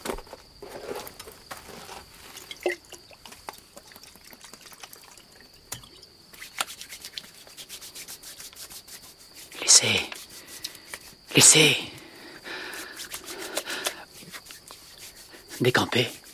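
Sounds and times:
hands briskly rubbing icy legs soaked in alcohol: 0:06.3 - 0:11.6, 0:12.5 - 0:16.3
speech: 0:09.8 - 0:10.1, 0:11.4 - 0:11.9, 0:15.6 - 0:16.2.

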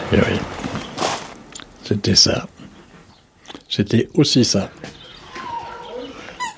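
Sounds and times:
speech: 0:00.1 - 0:00.5, 0:01.9 - 0:02.5, 0:03.7 - 0:04.9
dog whimpering in high-pitched squeaky whines: 0:05.1 - 0:06.5.

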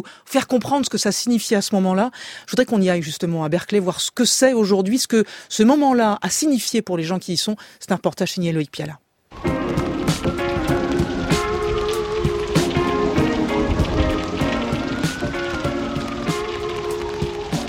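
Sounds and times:
speech: 0:00.0 - 0:10.4
steady rain pattering on the ground in Berkeley: 0:00.4 - 0:01.7, 0:09.3 - 0:17.6.

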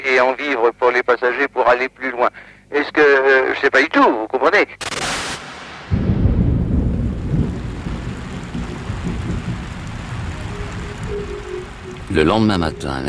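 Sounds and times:
speech: 0:00.1 - 0:05.3, 0:12.2 - 0:13.0
fine rain in Kampala Uganda: 0:05.0 - 0:13.0
distant deep thunder rumble: 0:05.7 - 0:13.0.

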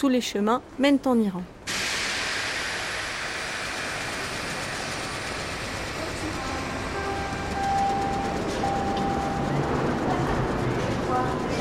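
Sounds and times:
speech: 0:00.0 - 0:01.6
trains rumbling at a Paris railway station: 0:01.6 - 0:11.5
crowd noise at a Paris railway station: 0:05.9 - 0:11.5.

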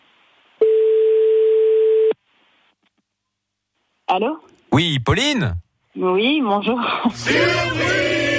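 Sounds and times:
telephone ringback tone on a call: 0:00.6 - 0:02.1
speech: 0:04.1 - 0:08.2.

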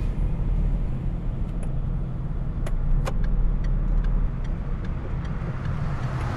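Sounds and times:
small red car engine humming as it drives: 0:00.0 - 0:06.3
light clicks and ticks: 0:02.6 - 0:06.3.

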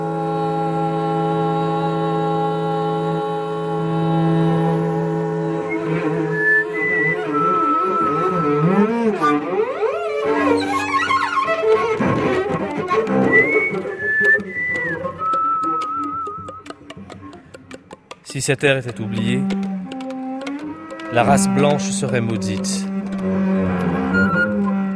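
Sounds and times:
low sustained bowed cello line: 0:00.0 - 0:24.9
higher wavering flute melody: 0:05.5 - 0:17.9, 0:18.8 - 0:24.9
speech: 0:18.4 - 0:19.7, 0:21.1 - 0:22.8.

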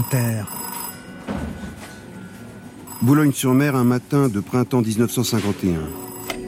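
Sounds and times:
speech: 0:00.0 - 0:00.6, 0:03.0 - 0:06.0
old-fashioned telephone bell ringing with metallic trill: 0:00.0 - 0:01.3, 0:02.4 - 0:03.9, 0:05.9 - 0:06.4.

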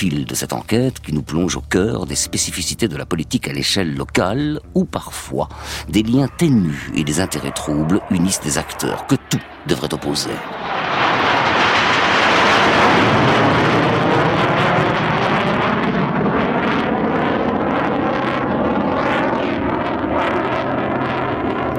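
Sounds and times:
speech: 0:00.0 - 0:11.4
Mirage fighter jets flying overhead: 0:03.8 - 0:21.7.

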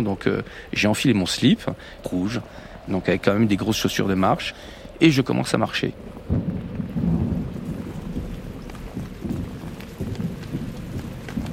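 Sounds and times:
speech: 0:00.0 - 0:06.5
steady rain pouring with dense patter: 0:00.0 - 0:11.5
deep low rumble: 0:02.4 - 0:11.5.

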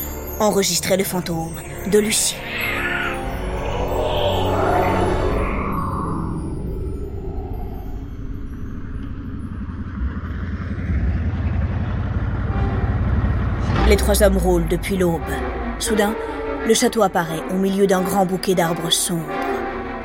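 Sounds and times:
speech: 0:00.4 - 0:02.9, 0:13.9 - 0:19.4
brief higher whine: 0:02.3 - 0:13.8
road noise: 0:02.4 - 0:16.6
car engine rumble while driving along a road: 0:05.5 - 0:14.7.

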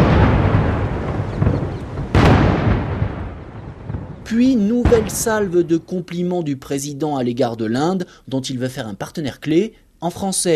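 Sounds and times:
continuous rumbling roar: 0:00.0 - 0:05.2
ceremonial cannon salute fire outdoors: 0:00.0 - 0:05.8
speech: 0:04.3 - 0:10.5.

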